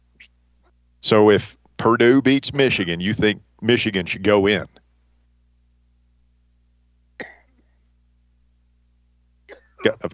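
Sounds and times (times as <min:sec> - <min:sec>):
low steady hum: 0:00.0 - 0:10.1
speech: 0:01.0 - 0:04.8
person coughing: 0:07.2 - 0:07.8, 0:09.5 - 0:10.0.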